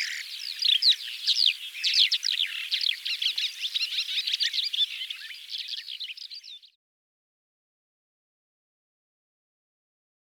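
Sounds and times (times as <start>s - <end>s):
Calandra lark song: 0.0s - 6.7s.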